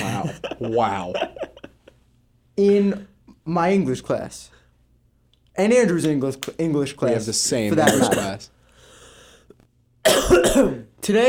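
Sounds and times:
laughter: 0.0 - 2.0
speech: 0.6 - 1.4, 2.6 - 4.6, 5.6 - 8.6, 10.0 - 11.2
man coughing into a microphone: 7.7 - 8.5, 10.0 - 10.9.

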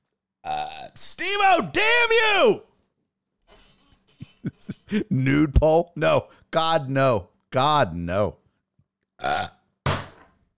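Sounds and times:
loud burps: 0.4 - 1.0, 9.2 - 9.7
speech: 0.9 - 2.7, 4.5 - 8.4, 9.2 - 9.6.

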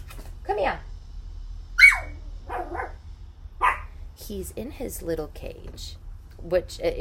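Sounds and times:
low hum: 0.0 - 6.9
speech: 0.5 - 0.9, 4.3 - 6.9
small dog barking: 1.8 - 3.0, 3.6 - 3.9.

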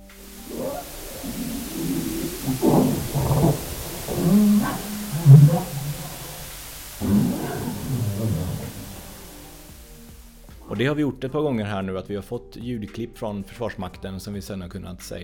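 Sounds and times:
harbor seal growling underwater: 0.0 - 9.7
dark hiss: 0.0 - 11.0
speech: 10.8 - 15.2.

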